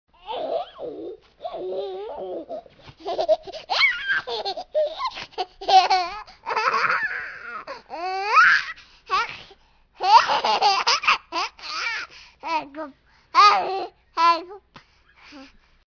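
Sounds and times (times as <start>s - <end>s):
baby laughing: 0.2s - 9.3s, 10.0s - 12.6s, 13.4s - 14.3s.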